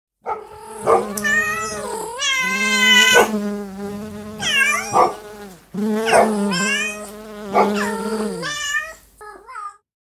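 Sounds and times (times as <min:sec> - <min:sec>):
dog barking: 0:00.2 - 0:06.8, 0:07.4 - 0:08.2
bee buzzing: 0:00.3 - 0:08.6
cat meowing: 0:00.4 - 0:09.0.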